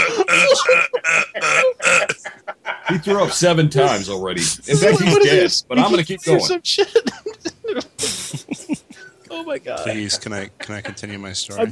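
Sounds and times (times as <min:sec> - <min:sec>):
person belching: 0:00.0 - 0:02.2
laughter: 0:00.0 - 0:09.2, 0:09.8 - 0:11.7
speech: 0:02.9 - 0:08.2, 0:09.4 - 0:11.7.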